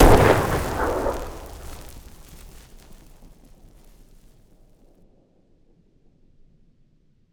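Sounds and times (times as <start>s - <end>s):
gas explosion: 0.0s - 4.1s.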